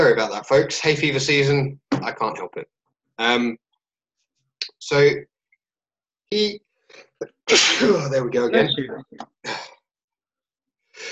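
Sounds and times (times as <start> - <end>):
speech: 0.1 - 3.6, 4.8 - 5.3, 6.3 - 9.8
person sneezing: 7.2 - 8.8.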